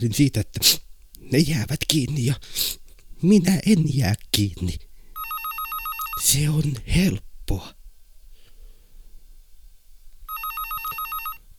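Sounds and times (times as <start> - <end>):
speech: 0.0 - 4.8, 6.2 - 7.8
telephone bell ringing: 5.2 - 6.2, 10.3 - 11.4
soft breathy sound: 8.2 - 9.3.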